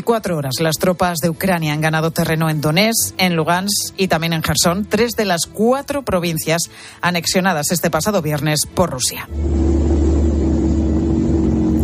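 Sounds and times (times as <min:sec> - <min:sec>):
speech: 0:00.0 - 0:10.0
military vehicles advancing on Kharkov with heavy low engine rumble: 0:09.3 - 0:11.8.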